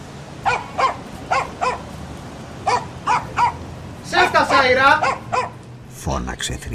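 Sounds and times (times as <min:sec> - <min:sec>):
dog barking: 0:00.4 - 0:01.9, 0:02.6 - 0:03.6, 0:04.9 - 0:05.6
speech: 0:04.4 - 0:05.4, 0:06.0 - 0:06.7.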